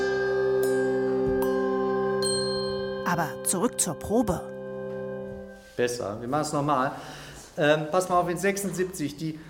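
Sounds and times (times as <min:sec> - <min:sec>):
handbell ensemble ringing a sustained chord in rehearsal: 0:00.1 - 0:04.7
speech: 0:03.1 - 0:04.5, 0:05.8 - 0:09.4.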